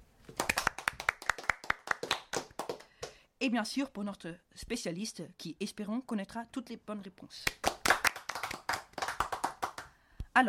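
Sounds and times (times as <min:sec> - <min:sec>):
hands clapping: 0:00.3 - 0:03.2, 0:07.5 - 0:09.9
speech: 0:03.4 - 0:07.6.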